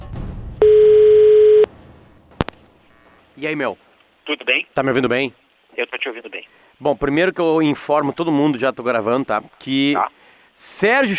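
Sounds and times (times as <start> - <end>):
telephone ringback tone as a call is placed: 0.6 - 1.7
speech: 3.4 - 11.1.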